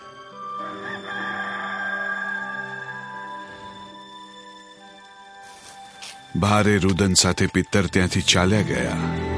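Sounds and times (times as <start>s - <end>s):
rooster crowing: 0.6s - 3.6s
speech: 6.3s - 9.2s.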